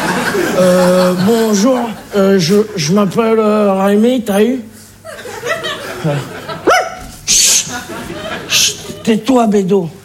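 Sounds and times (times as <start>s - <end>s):
laughter: 0.0s - 2.9s, 5.0s - 9.4s
speech: 0.6s - 4.7s, 6.0s - 6.3s, 8.5s - 10.0s
high-pitched yelp: 6.6s - 7.8s
dog barking: 6.7s - 7.1s.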